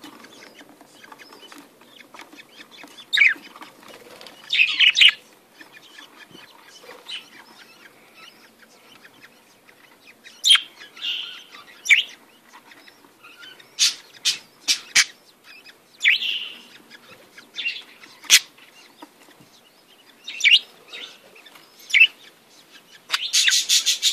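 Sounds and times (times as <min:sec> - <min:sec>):
budgerigar chatter: 0:00.0 - 0:24.1.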